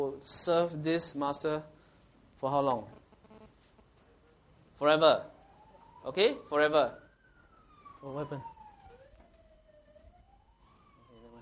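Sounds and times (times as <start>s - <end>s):
speech: 0.0s - 1.8s, 2.4s - 3.0s, 4.8s - 5.3s, 6.0s - 7.0s, 8.0s - 8.5s
ambulance siren wailing outside: 4.8s - 11.4s.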